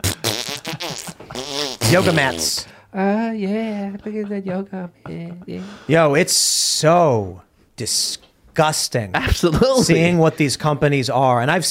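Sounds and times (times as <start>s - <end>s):
person blowing wet buzzing raspberries imitating farts: 0.0s - 2.6s
speech: 1.4s - 11.6s.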